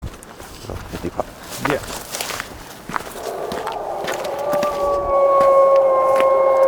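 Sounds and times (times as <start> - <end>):
speech: 0.7 - 2.1
golden jackal howling: 2.9 - 6.6.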